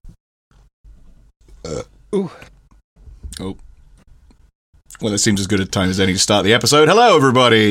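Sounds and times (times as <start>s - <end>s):
loud throaty burps: 1.6s - 2.5s
speech: 1.6s - 2.5s, 3.4s - 3.7s, 4.9s - 7.6s.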